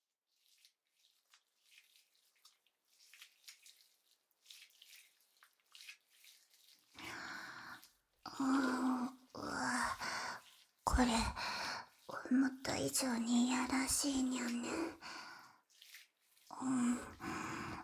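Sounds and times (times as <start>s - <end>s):
soap being lathered into foam: 0.3s - 17.8s
speech: 8.4s - 8.9s, 11.0s - 11.6s, 12.3s - 15.1s.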